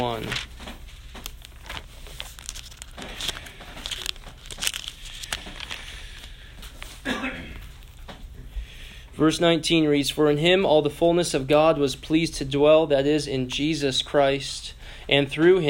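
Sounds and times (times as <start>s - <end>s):
speech: 0.0s - 0.5s, 9.2s - 15.6s
thin Bible pages rustling as they are flipped: 0.0s - 7.0s.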